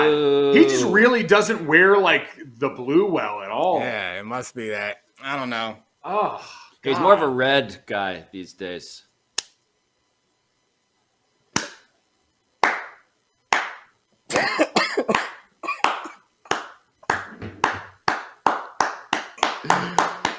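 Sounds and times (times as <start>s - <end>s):
speech: 0.1s - 9.1s
sharp hand clapping: 11.6s - 11.9s, 12.6s - 13.9s, 15.0s - 20.3s.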